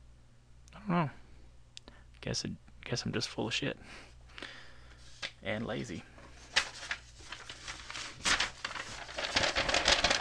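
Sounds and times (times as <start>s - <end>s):
speech: 0.9s - 1.2s, 2.2s - 4.6s, 5.4s - 6.1s
dry paper crinkling and crumpling: 6.2s - 10.1s.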